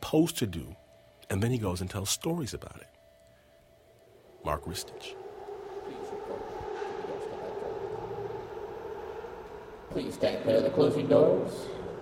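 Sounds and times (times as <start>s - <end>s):
speech: 0.1s - 3.0s, 4.4s - 5.2s, 10.0s - 11.8s
metallic squealing of subway train: 4.1s - 10.7s
New York City subway G train rumbling as it pulls in: 4.2s - 12.0s.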